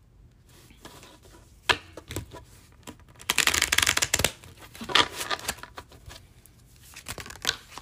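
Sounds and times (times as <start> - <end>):
deck of Lenormand cards being shuffled: 2.1 - 7.8.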